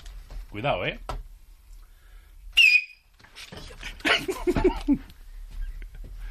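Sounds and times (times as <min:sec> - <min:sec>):
speech: 0:00.5 - 0:01.2, 0:04.2 - 0:05.1
person giving a loud piercing whistle: 0:02.6 - 0:03.0
laughter: 0:03.8 - 0:05.1.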